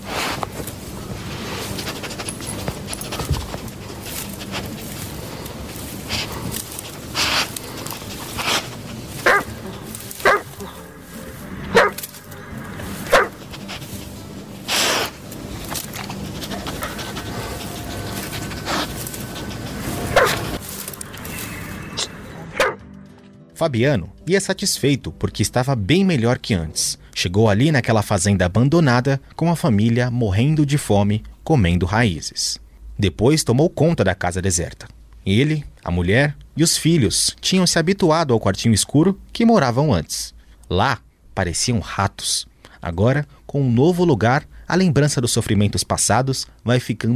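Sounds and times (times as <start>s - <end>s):
steady rustling: 0.0s - 21.6s
dog barking: 9.2s - 9.6s, 10.2s - 10.6s, 11.7s - 12.0s, 13.1s - 13.4s, 20.1s - 20.6s, 22.6s - 22.8s
speech: 23.6s - 47.1s.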